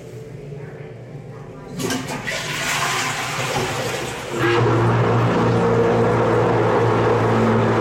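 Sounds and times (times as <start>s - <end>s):
toilet flushing deep underground: 1.8s - 7.7s
sustained roaring low drone like machinery: 4.4s - 7.7s.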